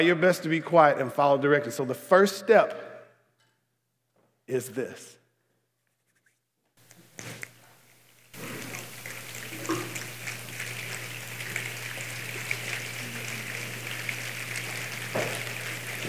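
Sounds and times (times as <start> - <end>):
speech: 0.0 - 2.8, 4.5 - 5.2
light rain imitated by a group making a passing storm: 6.8 - 16.0.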